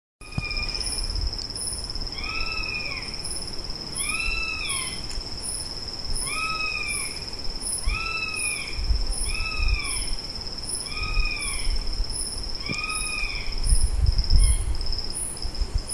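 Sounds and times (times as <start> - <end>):
Spizaetus isidori bird of prey: 0.2 - 3.4, 4.0 - 5.0, 6.2 - 14.7.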